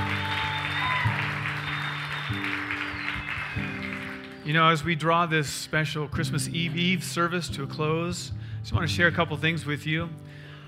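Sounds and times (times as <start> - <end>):
large crowd at a church service applauding a band: 0.0 - 4.8
speech: 4.5 - 10.3.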